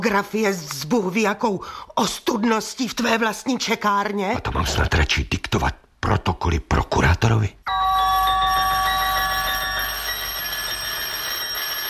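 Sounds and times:
speech: 0.0 - 7.8
loud continuous electric doorbell ringing: 7.7 - 11.8.

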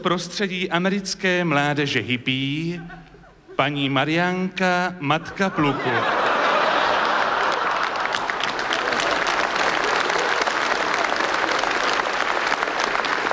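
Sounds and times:
speech: 0.0 - 3.0, 3.6 - 6.3
laughter: 2.6 - 3.9, 5.2 - 12.0
audience applause: 5.8 - 13.3.

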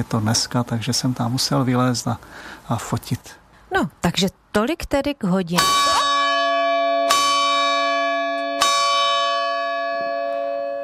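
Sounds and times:
speech: 0.0 - 5.9
church bell of Kozlovice ringing: 5.6 - 10.8.

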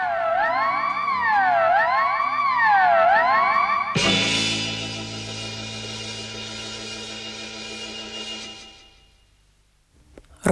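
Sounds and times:
ambulance siren wailing: 0.0 - 3.9.

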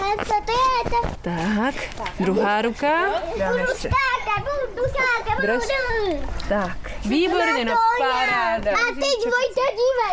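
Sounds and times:
children shouting and calling in a garden swimming pool: 0.0 - 1.2, 3.1 - 6.4, 7.2 - 10.1
speech: 0.9 - 10.1.

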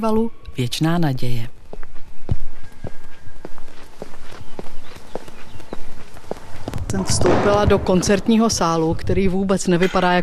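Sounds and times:
speech: 0.0 - 1.8, 6.9 - 10.2
faint ambient background: 0.0 - 10.2
footsteps walking: 1.6 - 9.5.

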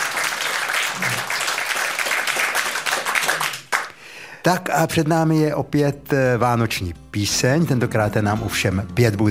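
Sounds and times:
applause from a sizeable crowd: 0.0 - 3.9
speech: 4.4 - 9.2.

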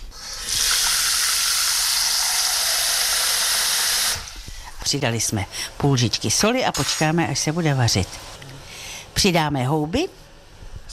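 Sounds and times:
water pouring into a cooking pot for cooking mushrooms: 0.2 - 4.4
speech: 4.9 - 8.4, 9.2 - 10.2.

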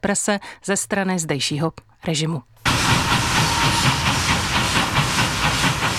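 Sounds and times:
speech: 0.0 - 3.2
steam train running on rails: 2.6 - 5.9.

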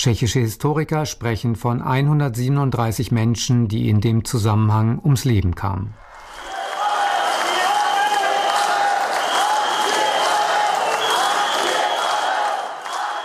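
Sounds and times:
speech: 0.0 - 6.1
large crowd chanting: 6.1 - 13.2
sharp whistles from a crowd: 6.2 - 13.2.

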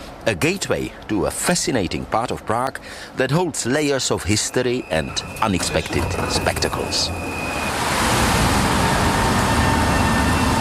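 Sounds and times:
speech: 0.2 - 7.6
water rushing over a river weir: 5.0 - 10.2.

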